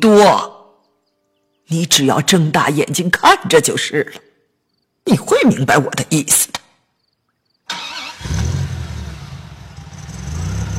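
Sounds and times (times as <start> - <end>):
speech: 0.0 - 0.5, 1.7 - 4.3, 5.0 - 6.6
car engine outside a window cranking and rumbling: 7.7 - 10.7.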